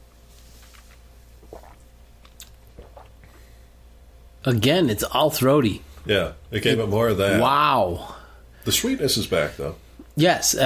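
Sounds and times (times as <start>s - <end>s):
faint steady hum: 0.0s - 10.6s
person sipping whiskey mixed with water: 0.4s - 3.6s
speech: 4.4s - 10.6s.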